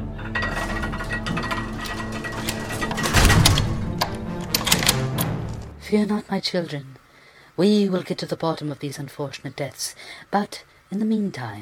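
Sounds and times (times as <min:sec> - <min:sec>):
heavy castle doors and gates clanking shut: 0:00.2 - 0:05.6
metallic clicks and rattles of castle gates: 0:00.2 - 0:05.6
sharp latching clinks: 0:00.3 - 0:05.6
deep thud: 0:03.0 - 0:03.9
speech: 0:05.9 - 0:07.0, 0:07.6 - 0:11.5.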